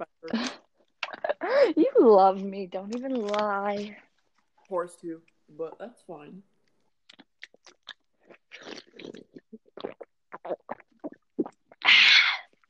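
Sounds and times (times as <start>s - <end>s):
speech: 0.0s - 0.5s, 1.6s - 4.1s, 4.7s - 6.5s
person swallowing: 7.1s - 12.4s.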